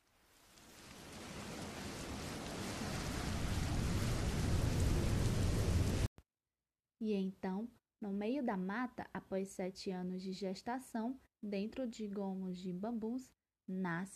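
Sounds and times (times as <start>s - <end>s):
heavy steady rain in a thunderstorm: 0.3s - 6.1s
low rumbling thunder: 0.9s - 6.1s
speech: 7.0s - 14.1s.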